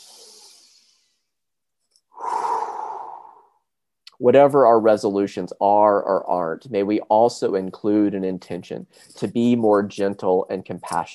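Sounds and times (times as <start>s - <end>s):
deep breaths during a church service: 0.0s - 1.3s, 2.1s - 3.6s
speech: 4.2s - 11.1s.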